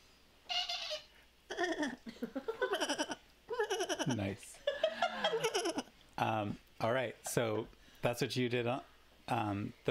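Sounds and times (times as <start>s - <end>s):
human voice imitating a high-pitched sheep baa: 0.5s - 2.0s, 2.7s - 4.3s
laughter: 2.0s - 5.9s
speech: 6.2s - 9.8s.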